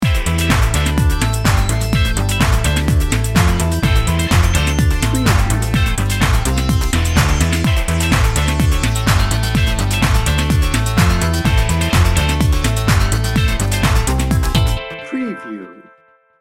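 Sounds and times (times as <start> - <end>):
corporate technology EDM: 0.0 - 16.0.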